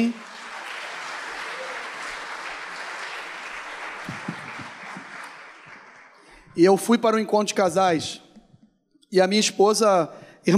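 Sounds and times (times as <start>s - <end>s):
speech: 0.0s - 0.3s, 6.6s - 8.2s, 9.1s - 10.5s
audience applauding: 0.0s - 6.9s.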